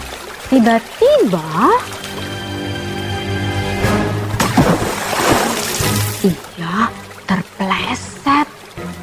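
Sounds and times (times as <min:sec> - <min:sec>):
soft music: 0:00.0 - 0:09.0
speech: 0:00.5 - 0:02.0, 0:06.2 - 0:08.0
splash of someone falling into a river while crossing on stones: 0:04.3 - 0:06.2.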